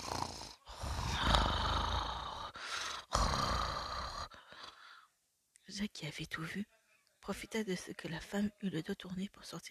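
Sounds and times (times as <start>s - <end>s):
loud rasping snoring of a sleeping ogre: 0.0s - 4.4s
speech: 5.8s - 9.7s.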